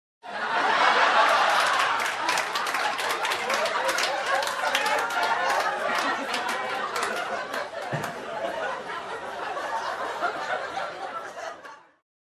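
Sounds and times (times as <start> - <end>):
crowd laughing: 0.2 - 12.0
minimal clapping: 1.3 - 8.2.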